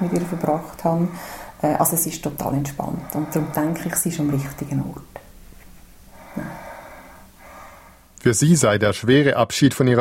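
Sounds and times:
relaxed sleeping woman snorting breath: 0:00.0 - 0:05.2, 0:06.1 - 0:08.1
speech: 0:00.0 - 0:05.2, 0:08.2 - 0:09.9
low hiss: 0:00.0 - 0:09.4.

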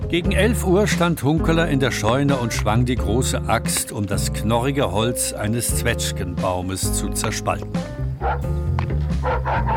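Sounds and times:
speech: 0:00.1 - 0:08.6
dog yapping outside: 0:08.2 - 0:08.5, 0:09.1 - 0:09.7.

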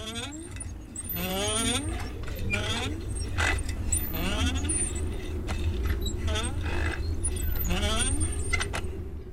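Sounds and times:
dry water pump creaking and squealing mechanically: 0:00.0 - 0:08.8.

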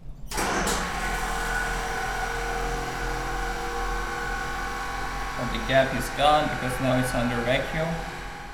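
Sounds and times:
3D metal printer vacuum pump rattling: 0:00.2 - 0:08.5
3D metal printer starting up: 0:00.3 - 0:08.5
person talking: 0:05.4 - 0:08.1.

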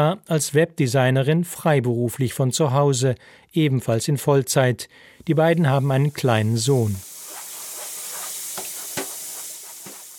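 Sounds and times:
speech: 0:00.0 - 0:07.1
fried rice with chopped vegetables sizzling in a pan: 0:05.2 - 0:10.1
scraping clacks of stirring and tossing fried rice in a pan: 0:07.3 - 0:10.1.

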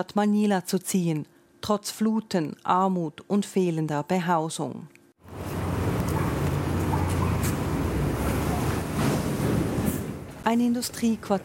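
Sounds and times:
speech: 0:00.0 - 0:05.0, 0:10.5 - 0:11.4
heavy trucks rumbling across a bridge in an industrial quarter of Manila: 0:05.3 - 0:10.4.

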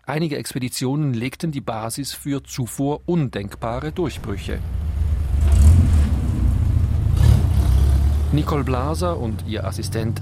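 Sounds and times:
speech: 0:00.1 - 0:04.8, 0:08.3 - 0:10.1
car driving on a trip to a neighbouring village: 0:02.2 - 0:10.1.

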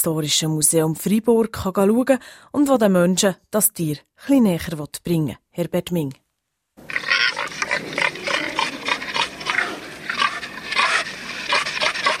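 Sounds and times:
speech: 0:00.0 - 0:06.2
wild boar grunting and snorting greeting calls: 0:06.8 - 0:12.1.

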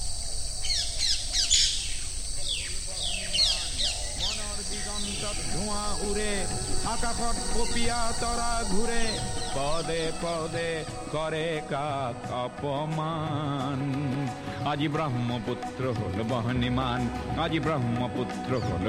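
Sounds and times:
many thousands of birds calling in grasslands and wetlands: 0:00.0 - 0:12.1
steady insect-like hiss: 0:00.0 - 0:13.2
speech: 0:06.0 - 0:18.8.

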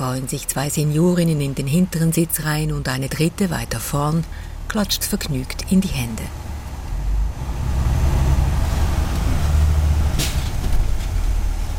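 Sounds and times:
speech: 0:00.0 - 0:06.4
large bus engine rumbling as it pulls away slowly: 0:00.0 - 0:11.7.

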